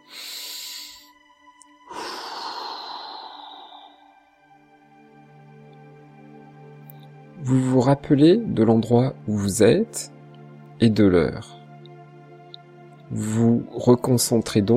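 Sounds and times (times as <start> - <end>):
person taking slow breaths in a guided breathing exercise: 0.0 - 5.4
speech: 7.4 - 10.2, 10.8 - 11.6, 13.1 - 14.7.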